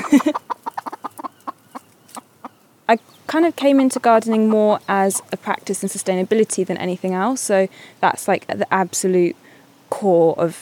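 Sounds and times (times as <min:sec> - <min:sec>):
chickens clucking in a small fenced garden enclosure: 0:00.0 - 0:07.3
speech: 0:00.1 - 0:00.6, 0:02.9 - 0:10.6.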